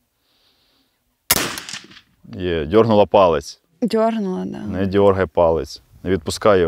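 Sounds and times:
single sharp gunshot at shooting practice: 0:01.3 - 0:02.1
speech: 0:02.3 - 0:06.6.

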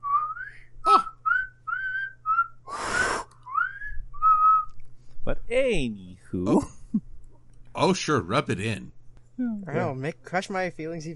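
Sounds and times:
person whistling: 0:00.0 - 0:04.7
sharp breathy burst: 0:02.7 - 0:03.4
speech: 0:05.5 - 0:07.1, 0:07.8 - 0:11.1.

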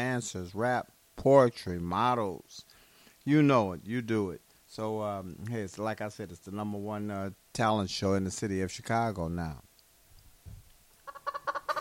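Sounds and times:
speech: 0:00.0 - 0:09.6
chicken clucking: 0:11.0 - 0:11.8.

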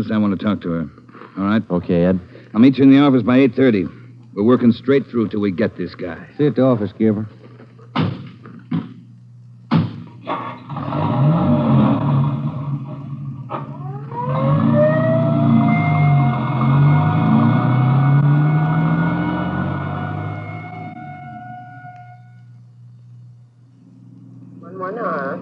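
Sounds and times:
speech: 0:00.0 - 0:07.4
door slams: 0:08.0 - 0:08.9
ambulance engine revving as it pulls away: 0:10.7 - 0:21.9
ambulance siren wailing: 0:13.8 - 0:22.4.

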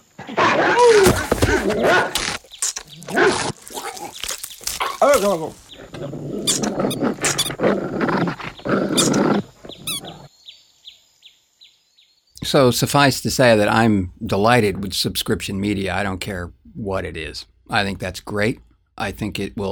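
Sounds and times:
yelps and squeals: 0:00.0 - 0:04.2, 0:04.8 - 0:07.6, 0:08.9 - 0:10.2
rabid dog snarling and growling in an attack: 0:00.2 - 0:10.3
thrashing noises: 0:00.9 - 0:07.6
speech: 0:01.7 - 0:02.2, 0:05.1 - 0:09.4, 0:12.5 - 0:19.7.

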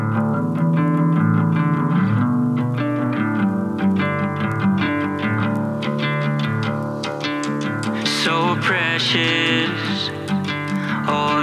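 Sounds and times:
rock band instrumental with distorted effects-laden guitars: 0:00.0 - 0:11.3
speech: 0:09.1 - 0:09.8.

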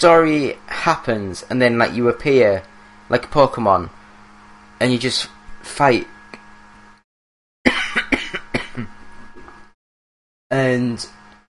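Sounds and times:
speech: 0:00.0 - 0:04.0, 0:04.8 - 0:06.1, 0:08.8 - 0:09.0, 0:10.5 - 0:11.2
person coughing and clearing throat: 0:07.7 - 0:09.0.

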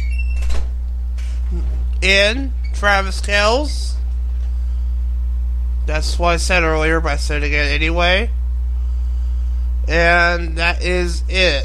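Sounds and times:
door being swung shut with a whoosh and thud: 0:00.0 - 0:01.8
steady low hum: 0:00.0 - 0:11.6
speech: 0:02.0 - 0:03.9, 0:05.9 - 0:08.4, 0:09.9 - 0:11.6.

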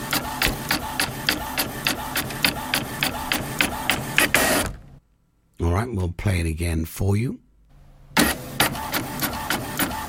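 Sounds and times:
household printer running: 0:00.0 - 0:04.9, 0:08.2 - 0:10.0
speech: 0:05.8 - 0:07.4.

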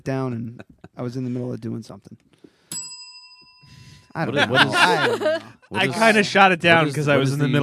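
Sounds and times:
speech: 0:00.0 - 0:02.3, 0:04.2 - 0:07.6
laughter: 0:00.2 - 0:01.3, 0:04.2 - 0:06.4
small bell ringing: 0:02.7 - 0:04.2.

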